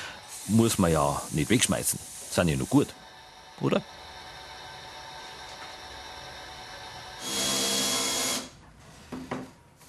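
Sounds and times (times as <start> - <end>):
mechanical hum: 0.0 - 9.8
speech: 0.5 - 3.0, 3.6 - 4.0
power tool drilling into wood: 7.2 - 8.5.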